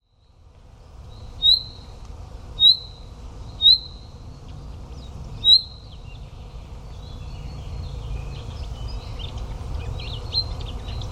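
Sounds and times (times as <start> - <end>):
faint scratchy chaffinch chatter: 0.0 - 11.1
low background hum: 0.0 - 11.1
chaffinch whistled notes: 1.4 - 1.8, 2.6 - 3.0, 3.6 - 4.1, 5.4 - 6.0.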